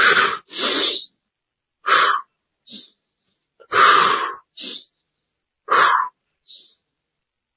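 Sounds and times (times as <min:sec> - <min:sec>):
forceful power breathing during a deep-breathing exercise: 0:00.0 - 0:01.1, 0:01.8 - 0:03.0, 0:03.6 - 0:04.9, 0:05.7 - 0:06.7.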